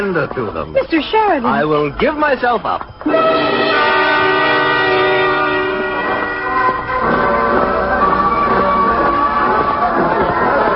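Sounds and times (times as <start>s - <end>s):
speech: 0.0s - 3.6s
crowd murmuring at an outdoor street parade: 3.0s - 10.7s
brass-heavy marching band playing at an outdoor street parade: 3.1s - 10.7s.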